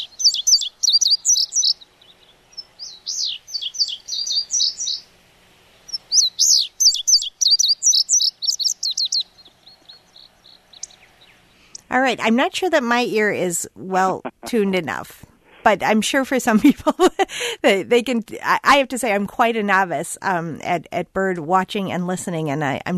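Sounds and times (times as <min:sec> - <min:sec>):
Indigo Bunting song: 0:11.8 - 0:16.0
speech: 0:12.0 - 0:22.9.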